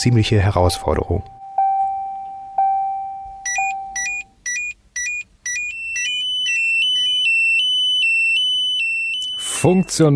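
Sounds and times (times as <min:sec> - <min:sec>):
speech: 0:00.0 - 0:01.4, 0:09.6 - 0:10.1
electronic warning beeps from a technical device: 0:00.8 - 0:10.1.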